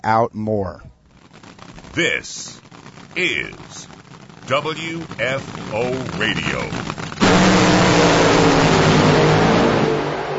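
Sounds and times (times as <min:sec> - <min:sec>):
speech: 0:00.0 - 0:00.9, 0:02.0 - 0:03.9, 0:04.5 - 0:07.0
drag racing car engine revving at full throttle at a drag race event: 0:04.7 - 0:10.3.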